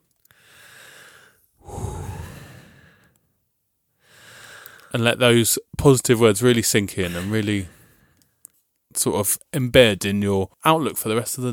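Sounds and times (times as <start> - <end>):
deep breaths during a calm affirmation exercise: 0.2 - 3.3, 4.0 - 5.0, 7.1 - 8.4
speech: 4.9 - 7.8, 9.0 - 11.5.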